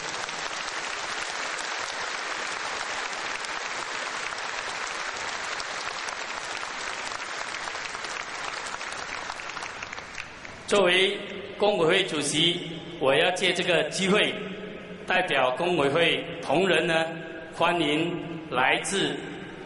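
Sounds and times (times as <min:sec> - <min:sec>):
sustained applause from a large audience: 0:00.0 - 0:10.7
speech: 0:10.7 - 0:14.5, 0:15.1 - 0:19.3.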